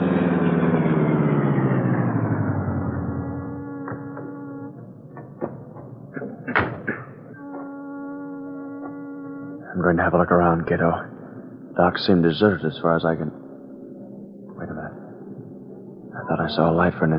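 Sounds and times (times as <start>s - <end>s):
powerful streamlined car engine winding down at the docks: 0.0s - 17.1s
sharp clunks and thuds: 5.1s - 7.7s
speech: 9.9s - 11.1s, 11.8s - 13.4s, 16.5s - 17.1s.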